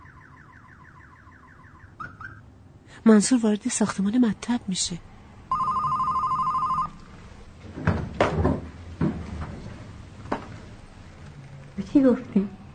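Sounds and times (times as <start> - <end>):
speech: 3.0 - 5.2, 12.0 - 12.6
electronic telephone ring: 5.5 - 7.0
clattering knocks and bumps: 7.6 - 10.8.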